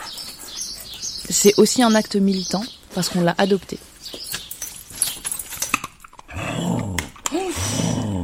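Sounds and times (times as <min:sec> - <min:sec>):
speech: 0:01.3 - 0:03.9
large female Labrador and shepherd mix dog growling: 0:06.2 - 0:08.2.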